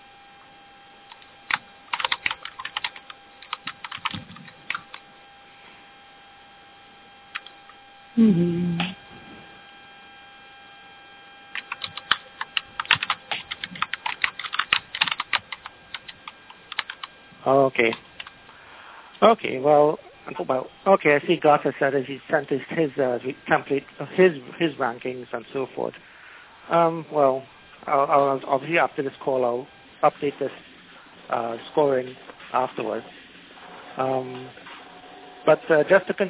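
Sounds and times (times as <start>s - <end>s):
steady electrical hum: 0.0s - 36.2s
typing on a computer keyboard: 1.1s - 5.0s, 11.5s - 17.1s, 17.8s - 18.4s
speech: 8.2s - 8.8s, 17.5s - 18.1s, 19.2s - 26.1s, 26.7s - 30.7s, 31.3s - 33.2s, 34.0s - 34.6s, 35.4s - 36.2s
short voice-like sounds: 8.2s - 9.0s.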